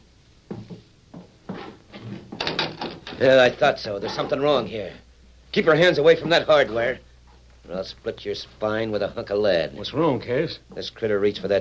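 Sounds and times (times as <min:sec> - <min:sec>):
door being opened with wooden clunks and rattles: 0:01.9 - 0:03.4
speech: 0:03.2 - 0:07.1, 0:07.7 - 0:11.5.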